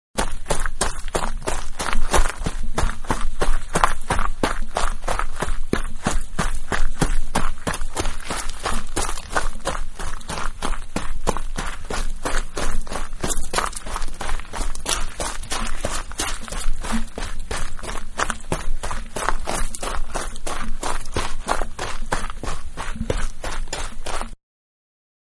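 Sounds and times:
person running on gravel: 0.2s - 24.4s.

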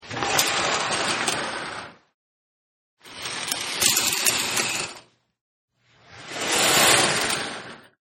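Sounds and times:
shower curtain pulled back: 0.0s - 2.0s, 3.1s - 5.0s, 6.1s - 7.9s.

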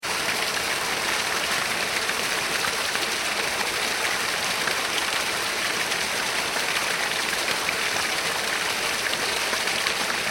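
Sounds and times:
small waterfall on a river: 0.0s - 10.2s.

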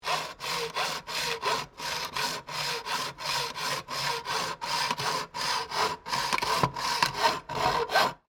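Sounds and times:
hacksaw cutting sheet metal: 0.0s - 8.3s.

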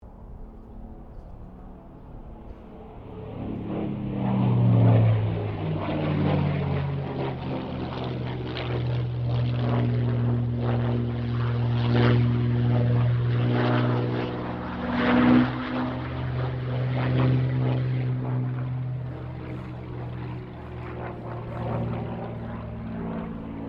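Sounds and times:
Supermarine Spitfire Mk VIII aircraft passing: 0.0s - 23.6s.

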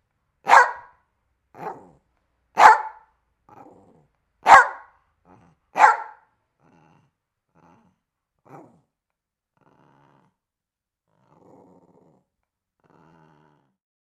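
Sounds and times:
dog barking: 0.4s - 1.0s, 1.6s - 2.0s, 2.6s - 3.1s, 4.4s - 5.0s, 5.7s - 6.3s
dog grumbling: 1.6s - 2.0s, 3.5s - 4.1s, 5.2s - 6.0s, 6.6s - 8.9s, 9.6s - 10.4s, 11.1s - 13.8s.

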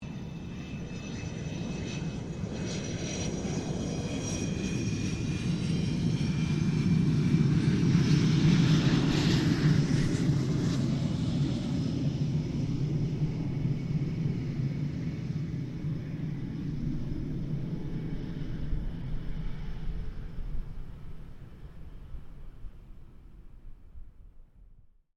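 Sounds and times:
2006 RAAF FA-18 Hornet fighter jet landing: 0.1s - 24.0s.

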